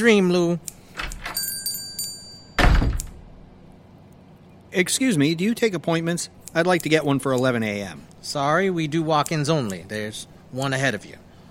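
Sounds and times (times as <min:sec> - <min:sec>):
speech: 0:00.0 - 0:00.8, 0:04.7 - 0:11.2
barbershop door bell chime: 0:01.3 - 0:02.6
barbershop door thunking shut: 0:02.6 - 0:03.3.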